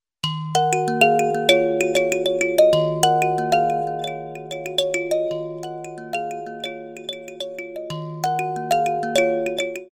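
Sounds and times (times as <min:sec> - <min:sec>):
grand kalimba: 0:00.2 - 0:09.9.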